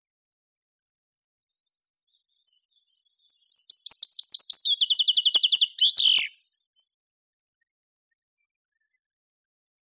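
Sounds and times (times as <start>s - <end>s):
common chaffinch Fringilla coelebs singing: 2.0s - 6.9s.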